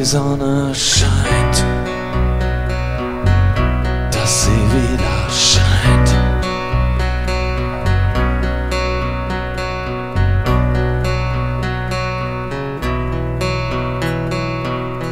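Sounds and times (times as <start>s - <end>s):
speech: 0.0s - 1.7s
loud punk rock song with distorted guitars, pounding drums and crashing cymbals: 0.0s - 15.0s.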